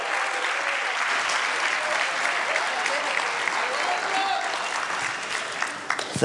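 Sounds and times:
audience applauding: 0:00.0 - 0:06.2.

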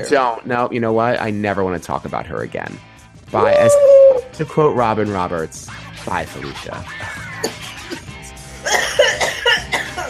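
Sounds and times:
speech: 0:00.0 - 0:07.2
person coughing: 0:07.3 - 0:10.0.

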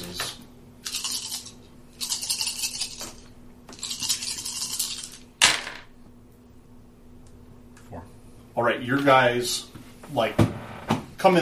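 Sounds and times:
several dice rattling: 0:00.8 - 0:05.9
speech: 0:08.6 - 0:10.5.

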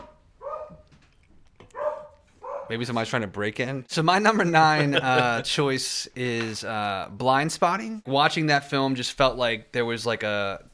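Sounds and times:
dog barking: 0:00.0 - 0:00.9, 0:01.7 - 0:02.8
speech: 0:02.7 - 0:10.7
laughter: 0:04.3 - 0:06.4.

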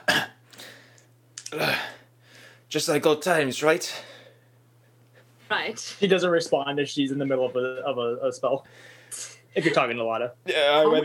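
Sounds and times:
person acting a cough: 0:00.0 - 0:00.4
faint steady low hum: 0:00.0 - 0:11.0
speech: 0:01.5 - 0:01.9, 0:02.7 - 0:04.2, 0:05.5 - 0:11.0.

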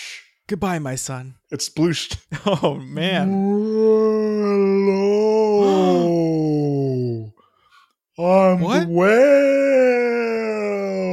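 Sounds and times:
speech: 0:00.5 - 0:05.0, 0:08.7 - 0:09.2
person imitating a whale's moaning call: 0:03.2 - 0:07.3, 0:08.8 - 0:11.1.

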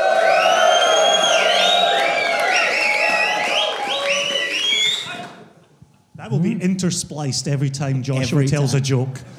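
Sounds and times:
live audience screaming and cheering: 0:00.0 - 0:05.4
speech: 0:06.8 - 0:09.3.

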